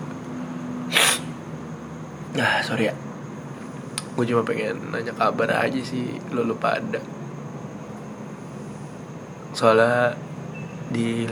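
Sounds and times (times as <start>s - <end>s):
person with flu sneezing: 0.9s - 1.4s
speech: 2.4s - 3.1s, 4.2s - 7.2s, 9.6s - 10.2s, 10.9s - 11.3s.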